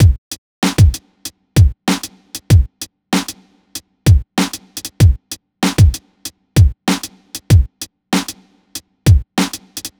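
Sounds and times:
hip hop drum beat in A minor: 0.0 - 9.9.

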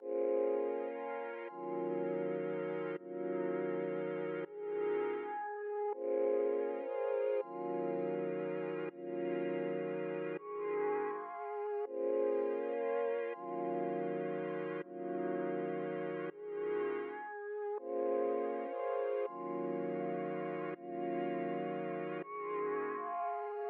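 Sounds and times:
synth pad in A sharp minor at 81 BPM: 0.0 - 23.6.

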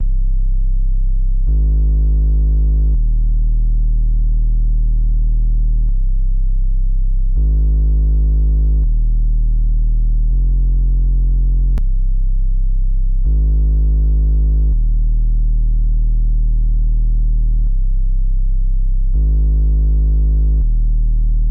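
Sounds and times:
C minor sub bass: 0.0 - 21.4.

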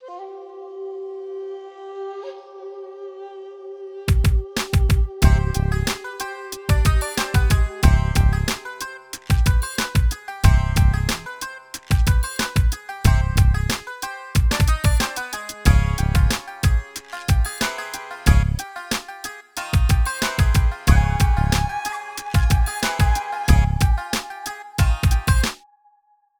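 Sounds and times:
hip hop music in C minor: 5.2 - 25.6.

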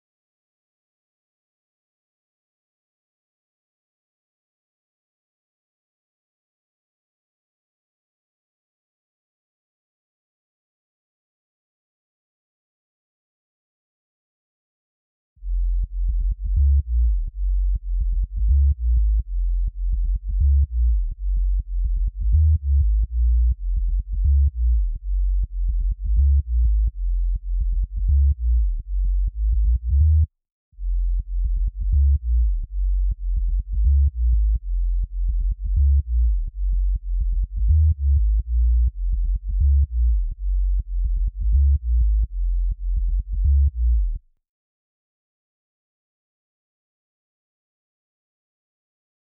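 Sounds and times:
future house sub bass in A sharp: 15.4 - 44.3.

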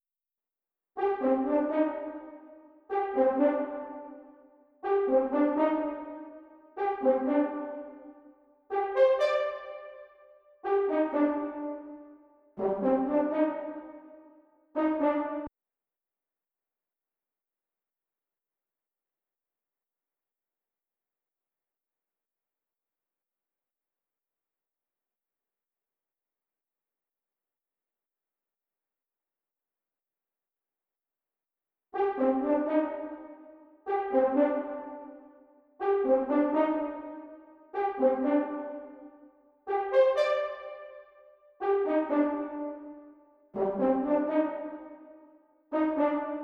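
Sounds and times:
horn in C minor: 1.0 - 15.5, 32.0 - 46.4.

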